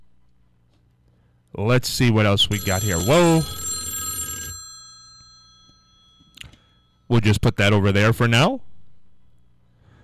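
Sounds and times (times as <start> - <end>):
speech: 1.6 - 3.6, 7.1 - 8.7
telephone ringing with a high electronic tone: 2.4 - 7.0.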